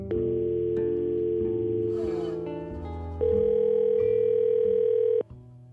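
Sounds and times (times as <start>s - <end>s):
steady electronic telephone call ringing tones: 0.1s - 2.5s, 3.2s - 5.3s.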